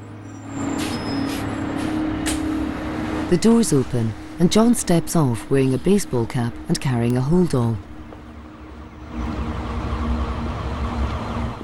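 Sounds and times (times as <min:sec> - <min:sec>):
bus engine rumble pulling up at a stop: 0:00.0 - 0:11.6
bus air brakes hissing: 0:00.3 - 0:04.7
speech: 0:03.3 - 0:07.9.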